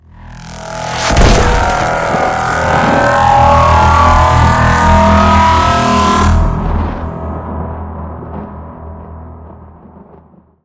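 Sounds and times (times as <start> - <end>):
death ray: 0.2 - 7.6.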